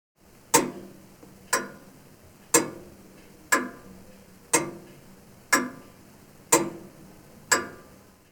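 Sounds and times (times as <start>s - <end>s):
grandfather clock ticking: 0.5s - 1.9s, 2.5s - 5.9s, 6.5s - 8.0s.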